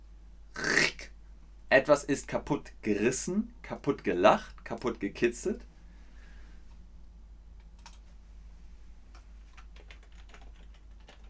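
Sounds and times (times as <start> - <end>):
steady low hum: 0.0 - 9.8
speech: 1.7 - 5.7
typing on a computer keyboard: 7.7 - 8.0, 9.5 - 11.2.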